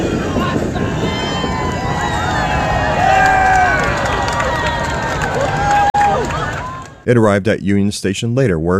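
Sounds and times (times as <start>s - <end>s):
passing steam locomotive rumbling: 0.0s - 6.8s
large outdoor crowd cheering and chattering: 0.0s - 7.1s
speech: 7.1s - 8.7s.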